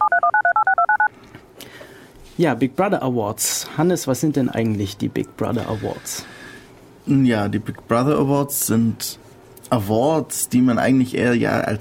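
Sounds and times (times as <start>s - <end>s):
telephone keypad DTMF dialing tones: 0.0s - 1.1s
speech: 2.4s - 6.4s, 7.1s - 11.7s.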